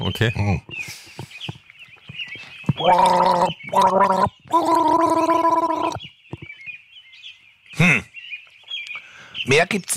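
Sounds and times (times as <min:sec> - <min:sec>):
speech: 0:00.0 - 0:01.0, 0:02.8 - 0:06.0, 0:07.8 - 0:08.0, 0:09.5 - 0:09.9
person gargling a short three-note tune: 0:02.8 - 0:06.0.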